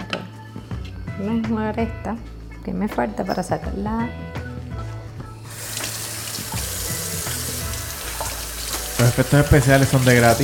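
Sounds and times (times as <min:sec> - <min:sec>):
speech: 0:01.2 - 0:04.4, 0:09.0 - 0:10.4
tap water running into a sink while washing dishes: 0:05.5 - 0:10.4.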